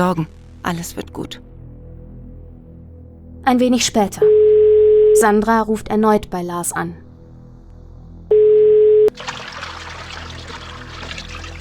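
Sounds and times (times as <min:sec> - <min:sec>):
speech: 0:00.0 - 0:01.5, 0:03.4 - 0:04.5, 0:05.2 - 0:07.0
telephone tone: 0:04.2 - 0:05.3, 0:08.3 - 0:09.2
water splashing and trickling over a phone line: 0:09.1 - 0:11.6.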